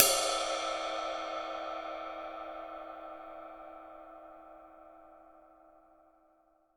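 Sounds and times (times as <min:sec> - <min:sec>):
ride cymbal: 0:00.0 - 0:03.8.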